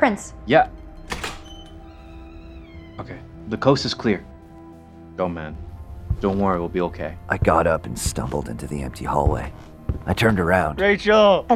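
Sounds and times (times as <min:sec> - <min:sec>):
speech: 0:00.0 - 0:00.8, 0:03.0 - 0:04.3, 0:05.2 - 0:11.5
door latch and handle clunks: 0:01.0 - 0:02.0.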